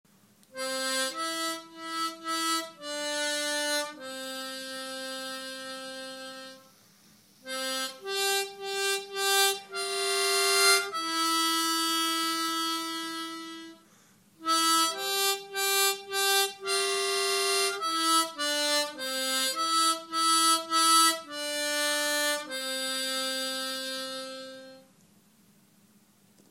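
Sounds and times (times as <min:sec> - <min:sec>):
folk tune played in intervals on harmonica: 0:00.5 - 0:24.9.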